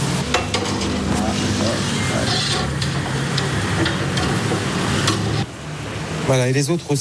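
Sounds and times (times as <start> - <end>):
squid and shrimp sizzling on hot embers: 0.0 - 5.5
speech: 6.3 - 6.9.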